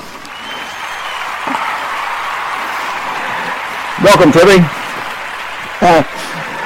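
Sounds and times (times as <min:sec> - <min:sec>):
audience applause: 0:00.0 - 0:06.6
speech: 0:04.0 - 0:04.8, 0:05.8 - 0:06.2.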